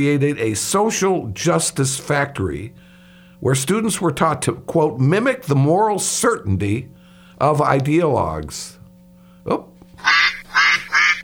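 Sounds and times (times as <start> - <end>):
speech: 0.0 - 8.8, 9.4 - 10.1
faint steady hum: 0.0 - 11.2
duck quacking: 10.0 - 11.2.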